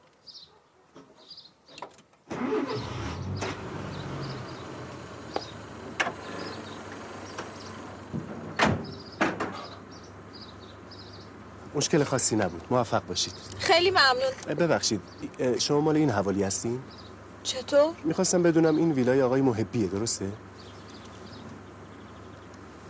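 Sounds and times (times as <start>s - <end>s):
car engine being started and idling: 2.2s - 22.8s
sharp knocks: 8.1s - 9.6s
speech: 11.8s - 20.5s.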